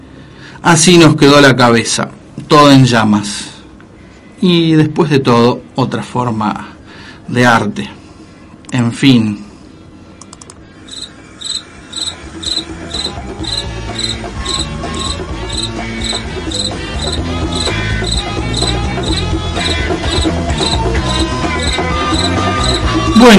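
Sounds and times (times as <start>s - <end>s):
speech: 0.6s - 3.5s, 4.4s - 6.7s, 7.3s - 8.0s, 8.7s - 9.4s
crickets chirping: 10.9s - 22.9s.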